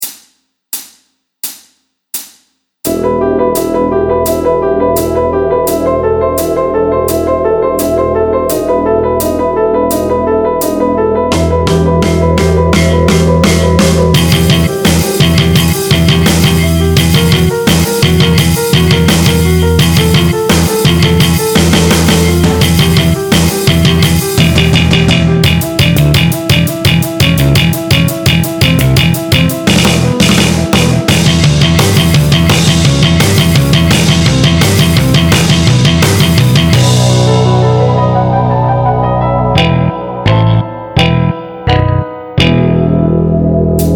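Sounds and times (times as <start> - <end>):
neoclassical metal backing track: 2.8 - 43.9
neoclassical metal guitar licks: 11.3 - 43.9.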